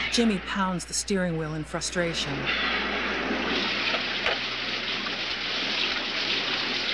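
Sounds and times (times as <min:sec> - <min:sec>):
speech: 0:00.1 - 0:02.7
steady rain pouring: 0:03.3 - 0:06.9.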